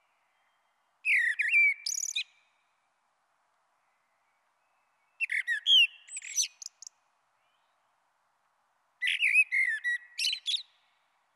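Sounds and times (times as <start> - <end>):
Common blackbird singing a fluting mellow phrase: 0.3 - 2.4, 5.2 - 6.9, 9.0 - 10.8.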